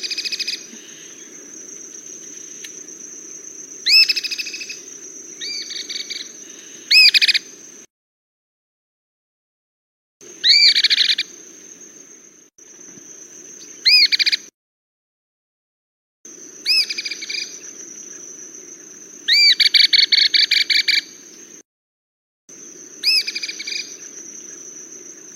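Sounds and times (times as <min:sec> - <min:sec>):
cliff flycatcher calling: 0:00.0 - 0:07.9, 0:10.2 - 0:14.5, 0:16.3 - 0:21.6, 0:22.5 - 0:25.3.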